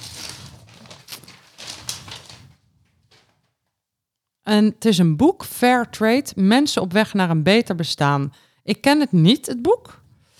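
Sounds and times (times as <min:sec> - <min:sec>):
floral gift-wrapping paper crinkling and tearing as a present is opened: 0:00.0 - 0:03.4
speech: 0:04.5 - 0:10.0.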